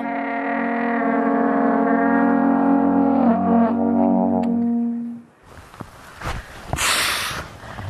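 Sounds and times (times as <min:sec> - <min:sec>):
amateur tooting on a brass wind instrument: 0:00.0 - 0:05.3.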